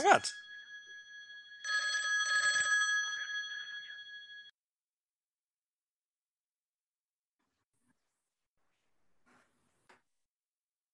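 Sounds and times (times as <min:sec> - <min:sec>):
speech: 0:00.0 - 0:00.4
telephone ringing with electronic tone: 0:00.0 - 0:04.5.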